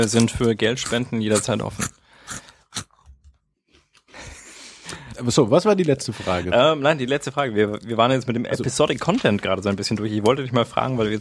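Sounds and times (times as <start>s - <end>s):
speech: 0.0s - 2.4s, 5.2s - 11.1s
crunching on salty crackers: 0.0s - 4.1s.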